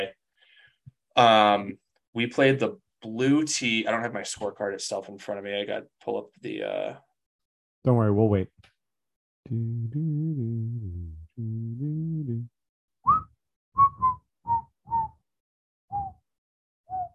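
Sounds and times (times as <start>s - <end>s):
speech: 1.2s - 7.1s, 7.8s - 8.6s, 9.5s - 14.6s
person whistling a tune: 9.5s - 15.2s.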